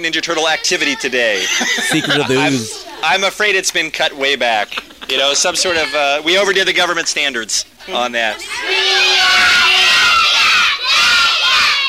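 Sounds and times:
speech: 0:00.0 - 0:09.6
laughter: 0:01.3 - 0:03.1, 0:04.6 - 0:05.7
crowd of children shouting in unison about day camp: 0:08.4 - 0:11.8.

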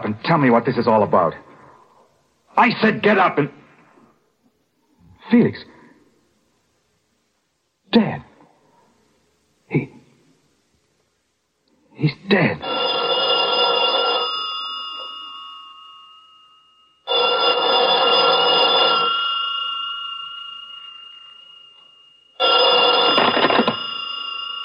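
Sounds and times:
speech: 0:00.1 - 0:01.5, 0:02.6 - 0:03.6, 0:05.3 - 0:05.8, 0:07.9 - 0:08.3, 0:09.7 - 0:10.0, 0:12.0 - 0:12.9
old-fashioned telephone bell ringing: 0:12.6 - 0:24.6.

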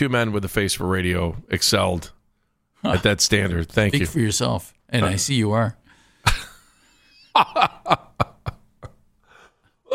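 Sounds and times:
speech: 0:00.0 - 0:02.2, 0:02.8 - 0:05.8, 0:07.4 - 0:08.1
quiet breathing: 0:05.8 - 0:07.2, 0:09.2 - 0:09.8
loud laughter: 0:07.2 - 0:09.0.

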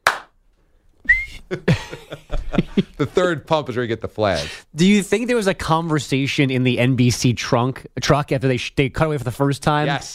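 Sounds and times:
person's voice imitating a referee's whistle: 0:01.1 - 0:01.4
laughter: 0:01.4 - 0:03.2
speech: 0:01.5 - 0:01.9, 0:02.5 - 0:10.1.

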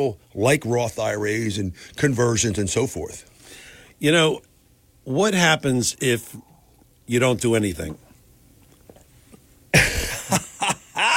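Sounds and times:
speech: 0:00.0 - 0:03.3, 0:04.0 - 0:06.5, 0:07.1 - 0:08.0
person clearing throat: 0:09.7 - 0:10.4
person coughing: 0:09.7 - 0:11.1.

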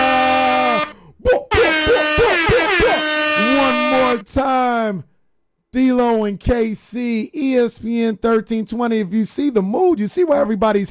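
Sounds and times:
air horn blasts: 0:00.0 - 0:04.3
speech: 0:04.3 - 0:05.1, 0:05.7 - 0:10.8.

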